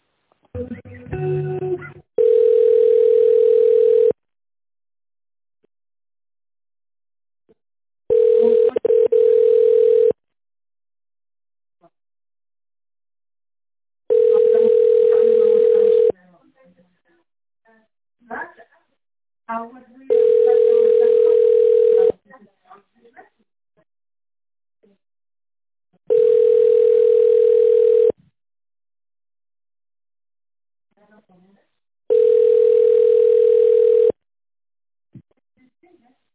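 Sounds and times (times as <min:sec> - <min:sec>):
telephone ringback tone while an office call is being transferred: 0:02.2 - 0:04.2, 0:08.1 - 0:10.2, 0:14.1 - 0:16.1, 0:20.1 - 0:22.2, 0:26.1 - 0:28.2, 0:32.1 - 0:34.2.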